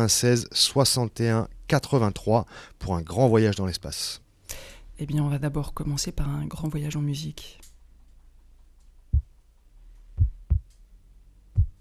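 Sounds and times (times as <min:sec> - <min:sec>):
speech: 0:00.0 - 0:04.2, 0:05.0 - 0:07.7
heartbeat thumping: 0:09.1 - 0:09.4, 0:10.2 - 0:10.7, 0:11.5 - 0:11.7.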